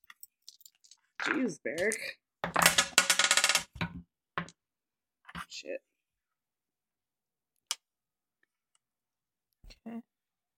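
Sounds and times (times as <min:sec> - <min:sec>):
several dice clattering and rattling: 0:00.2 - 0:04.5
speech: 0:01.2 - 0:02.7, 0:05.5 - 0:05.9, 0:09.8 - 0:10.1.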